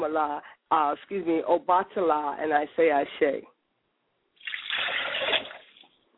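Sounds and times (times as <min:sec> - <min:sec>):
speech: 0:00.0 - 0:03.5
water poured from a glass: 0:04.4 - 0:06.0.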